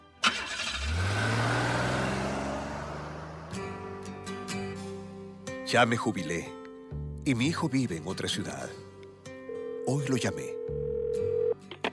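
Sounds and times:
car engine cranking, starting and idling: 0.2s - 5.1s
speech: 5.7s - 8.9s, 9.8s - 10.9s.

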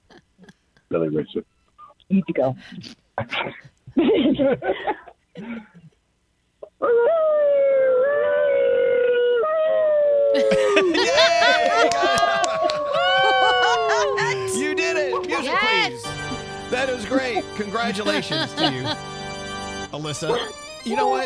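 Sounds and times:
speech: 0.9s - 5.8s, 10.4s - 12.5s, 16.8s - 19.2s, 19.9s - 21.2s
person howling like a wolf: 6.8s - 16.4s
layered howling voices: 10.4s - 17.4s
laughter: 10.4s - 19.2s.

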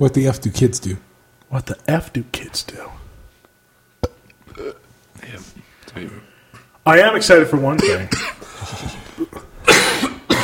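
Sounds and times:
speech: 0.0s - 3.0s, 4.6s - 9.4s
man coughing harshly into the microphone: 7.8s - 8.5s, 9.6s - 10.4s.

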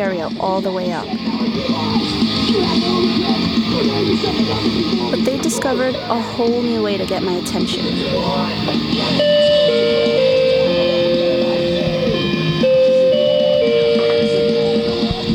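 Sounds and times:
speech: 0.0s - 10.1s
doorbell in a bedroom playing a short descending chime melody: 8.8s - 15.3s.

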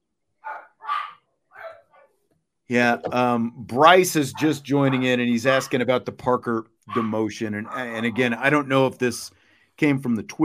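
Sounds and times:
two dogs barking at a friend arriving at the house: 0.4s - 2.1s, 4.2s - 5.8s, 6.9s - 8.6s
speech: 2.7s - 10.4s.

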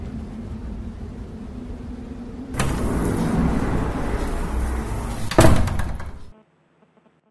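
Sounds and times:
loud street or traffic noise: 0.0s - 6.3s
thud: 2.6s - 6.3s.

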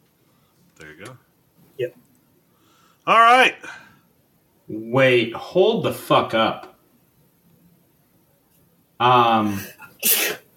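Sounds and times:
speech: 0.8s - 2.1s, 3.1s - 3.8s, 4.7s - 6.7s, 9.0s - 10.4s
sneeze: 10.0s - 10.5s.

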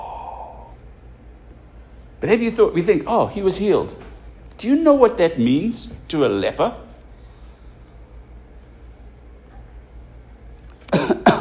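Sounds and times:
speech: 2.2s - 6.8s
person coughing harshly: 10.8s - 11.3s.

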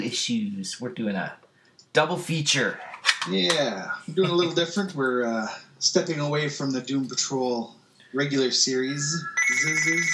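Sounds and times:
speech: 0.1s - 10.1s
telephone ringing with bright high-pitched electronic tones: 9.2s - 10.1s.

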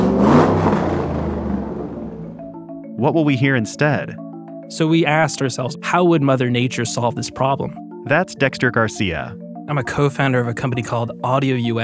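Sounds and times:
petrol car engine revving: 0.0s - 2.6s
speech: 3.0s - 11.8s.

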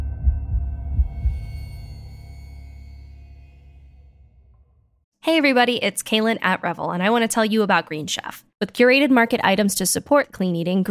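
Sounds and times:
deep heartbeat pounding: 0.0s - 1.6s
speech: 5.3s - 10.9s.

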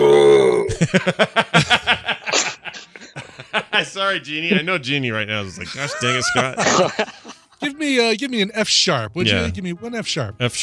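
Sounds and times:
man burping: 0.0s - 0.8s
laughter: 0.7s - 7.8s
speech: 0.9s - 1.8s, 4.1s - 7.2s, 7.9s - 10.6s.

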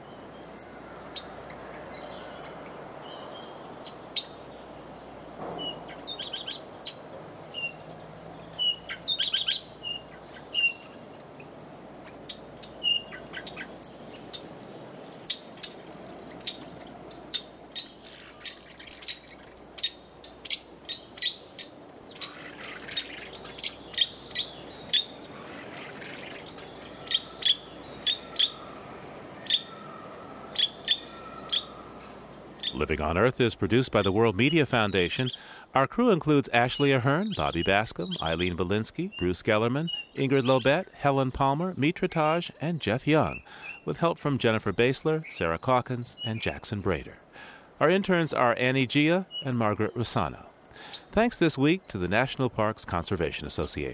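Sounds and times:
parakeets chattering and chirping: 7.6s - 32.9s
speech: 32.8s - 47.2s, 47.8s - 53.9s.

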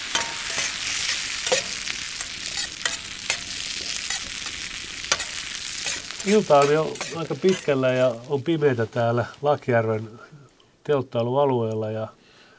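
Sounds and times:
clicks and scrapes of stirring in a frying pan: 0.0s - 8.3s
chopped lamb and other ingredients sizzling in a frying pan at a campfire site: 0.0s - 9.5s
speech: 6.2s - 12.2s.

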